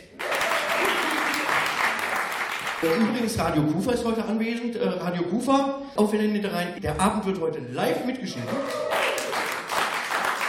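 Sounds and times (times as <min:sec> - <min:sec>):
live audience applauding: 0:00.0 - 0:03.2, 0:08.4 - 0:10.4
speech: 0:02.8 - 0:09.1.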